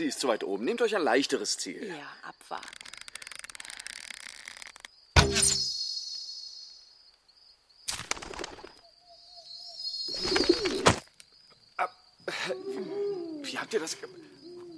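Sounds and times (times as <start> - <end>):
speech: 0.0 - 2.8, 13.7 - 14.4
dove cooing: 10.1 - 11.0, 12.3 - 14.7.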